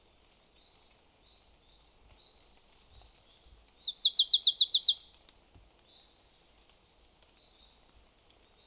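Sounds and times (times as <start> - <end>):
marsh tit Poecile palustris calling: 3.9 - 5.0.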